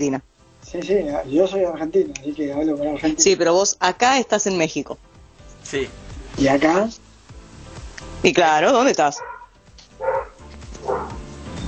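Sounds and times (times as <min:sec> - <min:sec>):
speech: 0:00.0 - 0:07.0, 0:08.2 - 0:09.3
dog barking: 0:09.1 - 0:11.3.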